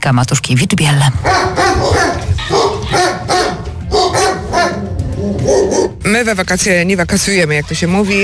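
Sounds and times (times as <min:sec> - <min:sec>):
speech: 0:00.0 - 0:02.2, 0:06.1 - 0:08.2
dogs barking at a municipal shelter for homeless animals in Opole: 0:01.2 - 0:06.0.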